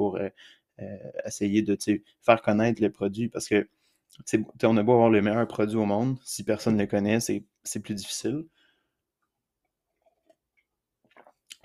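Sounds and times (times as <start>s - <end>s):
speech: 0.0s - 8.6s
person sipping water: 11.0s - 11.6s
soft wet mouth clicks and a swallow: 11.0s - 11.6s.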